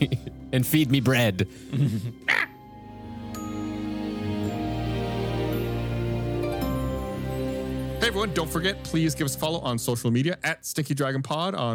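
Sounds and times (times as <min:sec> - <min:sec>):
speech: 0:00.5 - 0:02.4, 0:08.2 - 0:11.7
steady sustained musical drone: 0:01.5 - 0:10.0
harsh raven caws: 0:02.3 - 0:02.5.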